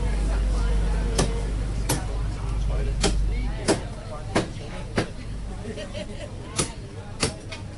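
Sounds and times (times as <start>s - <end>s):
market bustle and voices on Chungnyung Street in North Point: 0.0s - 7.7s
butcher chopping meat at a pork and chicken shop front: 1.2s - 2.1s, 3.0s - 5.2s, 6.6s - 7.5s
laughter: 5.5s - 6.6s.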